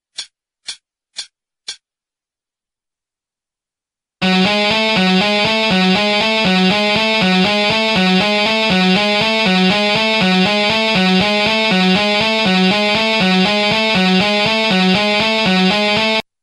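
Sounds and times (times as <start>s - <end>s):
beginner guitar solo: 4.2s - 16.2s.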